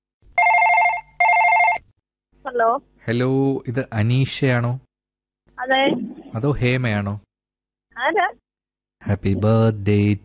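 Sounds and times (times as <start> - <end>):
telephone ringback tone on an outgoing call: 0.4 - 1.8
speech: 2.5 - 4.8, 5.6 - 7.3, 8.0 - 8.4, 9.0 - 10.2.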